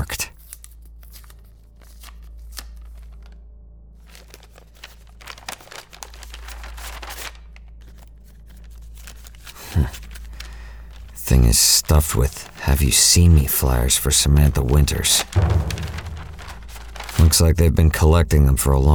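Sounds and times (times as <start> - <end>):
large brown paper envelope rustling, crinkling and tearing: 0.4 - 3.4, 4.0 - 17.8
low steady hum: 9.1 - 18.9
speech: 11.3 - 15.9, 17.3 - 18.9
thump: 15.4 - 17.2.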